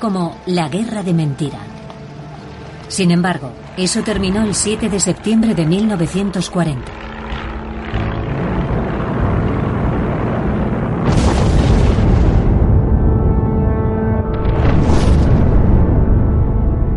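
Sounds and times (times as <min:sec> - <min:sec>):
speech: 0:00.0 - 0:01.8, 0:02.9 - 0:07.2
loud continuous low rumbling roar of bombing: 0:01.7 - 0:16.9
bombs exploding during an air raid: 0:09.8 - 0:13.6, 0:14.3 - 0:16.9.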